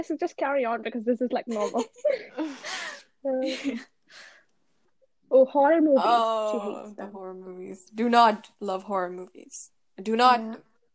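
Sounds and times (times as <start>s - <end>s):
speech: 0.0s - 4.3s, 5.3s - 10.9s
person gasping sharply while reading a book: 2.1s - 3.1s.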